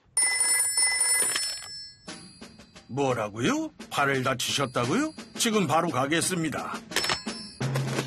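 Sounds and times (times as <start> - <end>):
telephone ringing in electronic trills: 0.2 - 2.9, 6.9 - 7.9
speech: 2.9 - 6.9.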